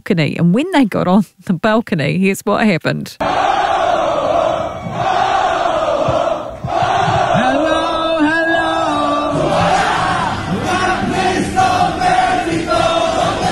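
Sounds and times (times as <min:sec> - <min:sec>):
speech: 0:00.1 - 0:03.4
large concert crowd of fans cheering and screaming: 0:03.2 - 0:13.5.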